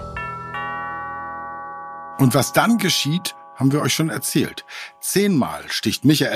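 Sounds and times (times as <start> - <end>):
two-tone doorbell chime: 0.0 - 6.3
speech: 2.2 - 6.3.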